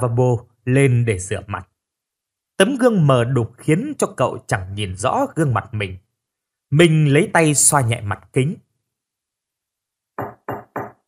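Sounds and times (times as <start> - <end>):
speech: 0.0 - 1.7, 2.6 - 6.0, 6.7 - 8.7
knocking on a wooden bathroom door: 10.2 - 11.0.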